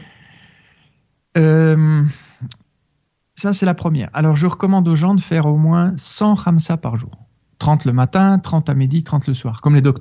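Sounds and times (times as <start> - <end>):
faint breathy inhale in a breathing exercise: 0.0 - 1.0
speech: 3.4 - 9.9.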